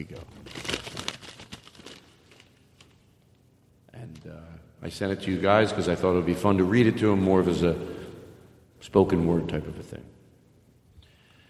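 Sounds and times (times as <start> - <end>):
speech: 0.0 - 0.6, 4.2 - 8.0, 8.8 - 10.2
paper thank-you letter rustling and crinkling as it is handled: 0.1 - 3.1.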